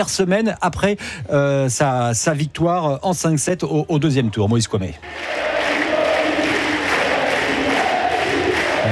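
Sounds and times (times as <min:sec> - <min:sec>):
speech: 0:00.0 - 0:05.6
large tennis stadium crowd on the Suzanne Lenglen court chanting a player's name: 0:05.1 - 0:08.9.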